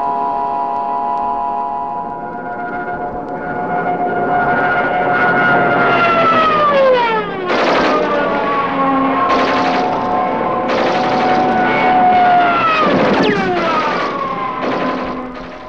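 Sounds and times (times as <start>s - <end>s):
low-flying propeller aircraft roaring overhead in wartime autumn 1942: 0.0s - 15.6s
machine-gun bursts fired from an aircraft: 7.4s - 15.6s.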